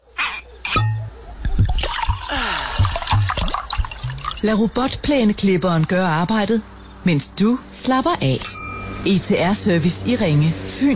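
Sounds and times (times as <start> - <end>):
small underground stream trickling in limestone mine cave passages: 0.6 - 6.4
water drips and splashes in limestone mine cave passages: 1.3 - 5.2
speech: 4.4 - 10.9.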